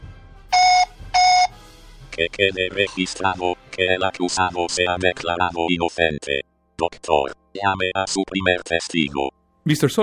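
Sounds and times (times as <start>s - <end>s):
loud electronic beeps as an accused person's answer in a court trial: 0.6s - 1.5s
speech: 2.2s - 10.0s.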